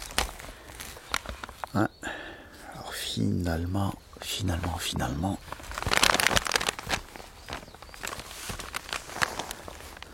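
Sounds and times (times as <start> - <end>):
large paper map being unfolded: 0.0 - 1.8, 4.4 - 10.1
speech: 1.7 - 2.0, 3.2 - 5.7.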